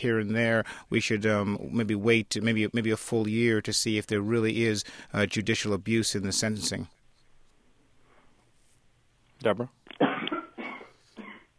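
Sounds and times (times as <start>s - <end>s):
speech: 0.0s - 7.0s, 9.4s - 10.0s
woman coughing: 10.0s - 11.5s.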